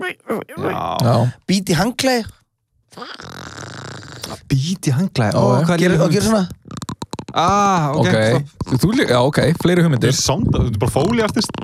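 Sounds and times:
speech: 0.1 - 3.6, 4.3 - 6.8, 7.4 - 11.6
voice imitating two pieces of styrofoam rubbed together: 2.9 - 4.5, 5.4 - 9.8, 10.9 - 11.6.

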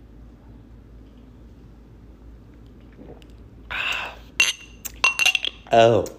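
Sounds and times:
glasses clinking in a toast: 4.4 - 5.8
speech: 5.7 - 6.1.

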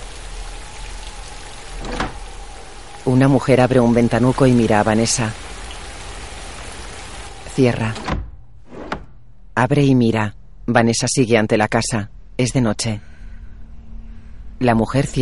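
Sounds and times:
steady rain pattering on a moor in front of a house: 0.0 - 7.6
speech: 3.0 - 5.4, 7.6 - 8.1, 9.6 - 13.1, 14.6 - 15.2.

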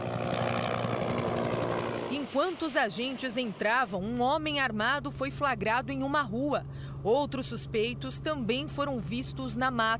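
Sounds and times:
police helicopter rotor thrumming overhead in São Gonçalo: 0.0 - 3.6
speech: 2.3 - 9.9.

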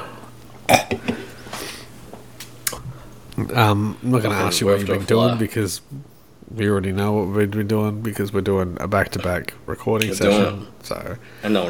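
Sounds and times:
loud wet burp: 0.7 - 1.2
speech: 3.4 - 11.6.

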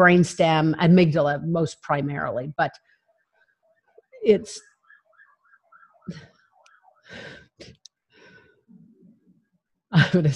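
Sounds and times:
speech: 0.0 - 3.0, 4.2 - 4.7, 6.1 - 6.3, 7.1 - 7.8, 9.9 - 10.3
faint police truck siren wailing while driving by: 2.2 - 7.7
breathy sighs and exhalations: 7.0 - 8.7.

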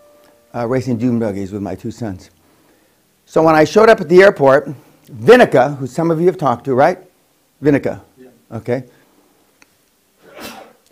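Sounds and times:
speech: 0.5 - 2.4, 3.3 - 9.0
single sharp sneeze: 10.2 - 10.8.

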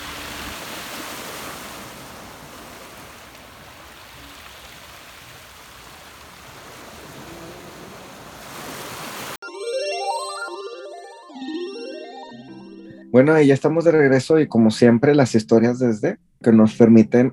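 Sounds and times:
ocean waves breaking on a beach: 0.0 - 9.4
bright music: 9.4 - 17.3
speech: 13.2 - 17.3.

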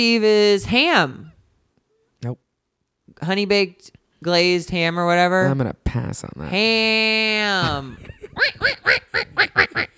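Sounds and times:
speech: 0.0 - 1.2, 2.2 - 2.4, 3.2 - 9.9
person imitating nasal duck quacks: 8.4 - 9.9.

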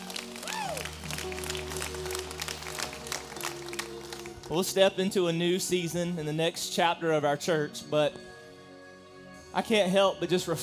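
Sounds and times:
cheers and whoops: 0.0 - 2.2
crowd applauding: 0.0 - 4.9
speech: 4.5 - 8.3, 9.5 - 10.6.

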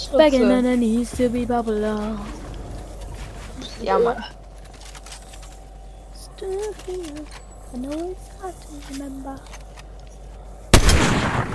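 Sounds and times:
speech: 0.1 - 2.4, 3.8 - 4.4, 6.4 - 9.6
sniper rifle headshot in a video game: 10.7 - 11.5.

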